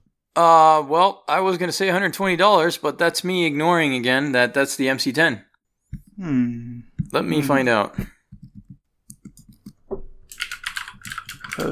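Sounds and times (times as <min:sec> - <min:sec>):
speech: 0:00.4 - 0:05.5, 0:06.2 - 0:08.2, 0:11.6 - 0:11.7
keystrokes on a computer keyboard typing a search: 0:08.2 - 0:11.7.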